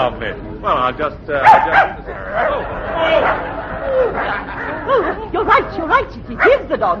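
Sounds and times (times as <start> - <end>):
speech: 0.0 - 6.9
small playful dog yapping and barking: 1.4 - 2.0
laughter: 1.4 - 6.6.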